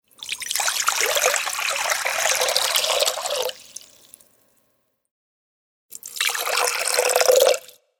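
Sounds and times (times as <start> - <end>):
liquid pouring out of a container: 0.1 - 4.5, 5.9 - 7.8.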